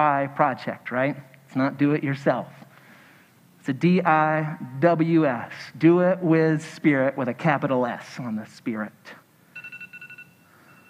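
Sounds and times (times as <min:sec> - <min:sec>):
speech: 0:00.0 - 0:02.6, 0:03.6 - 0:09.2
phone reminder alert beeps: 0:09.6 - 0:10.8.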